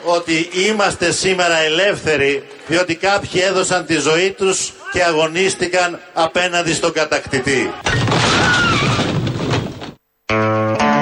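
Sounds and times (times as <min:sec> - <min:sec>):
speech: 0:00.0 - 0:08.4
heavy crash of a statue collapsing: 0:07.8 - 0:10.0.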